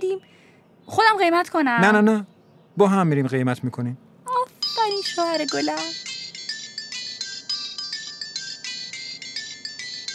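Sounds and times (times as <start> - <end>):
speech: 0.0 - 4.1, 5.0 - 6.0
phone ringtone of high electronic beeps: 4.5 - 10.1.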